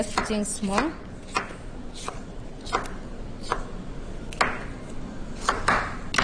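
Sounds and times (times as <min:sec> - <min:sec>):
speech: 0:00.0 - 0:01.1
knife chopping bell pepper on a cutting board: 0:00.0 - 0:03.7, 0:05.4 - 0:06.2.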